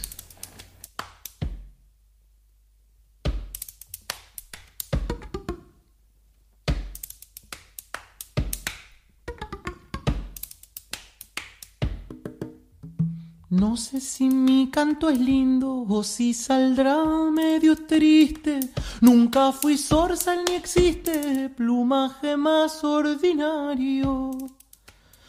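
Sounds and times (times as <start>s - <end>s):
sharp sparse percussive taps: 1.0s - 1.7s, 3.2s - 5.7s, 6.6s - 13.9s, 19.3s - 21.3s
speech: 13.6s - 24.6s.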